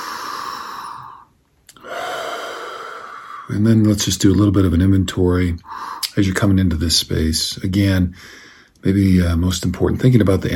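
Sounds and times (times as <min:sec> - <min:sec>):
deep breathing: 0:00.0 - 0:03.6, 0:05.6 - 0:06.2, 0:08.1 - 0:08.8
speech: 0:03.5 - 0:10.5.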